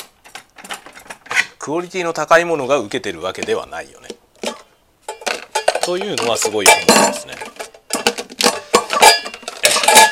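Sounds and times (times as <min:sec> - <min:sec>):
speech: 0:01.6 - 0:04.2, 0:05.9 - 0:07.6
dishes and cutlery clinking and clattering as they are cleared away: 0:04.4 - 0:10.1.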